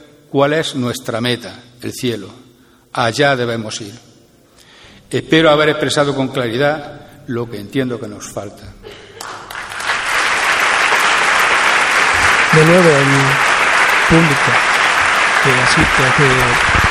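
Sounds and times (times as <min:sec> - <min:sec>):
speech: 0:00.3 - 0:04.1, 0:05.1 - 0:09.0, 0:12.6 - 0:13.5, 0:14.1 - 0:14.7, 0:15.4 - 0:16.8
large audience applause in a theatre: 0:09.2 - 0:16.9.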